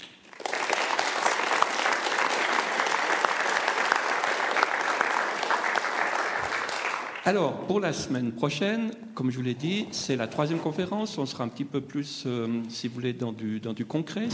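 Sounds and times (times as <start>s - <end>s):
audience applauding after a lecture: 0.0s - 7.3s
speech: 7.3s - 14.3s.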